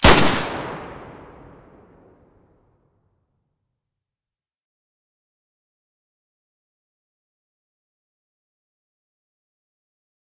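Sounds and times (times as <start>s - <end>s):
M9A3 muzzle blast: 0.0s - 2.0s.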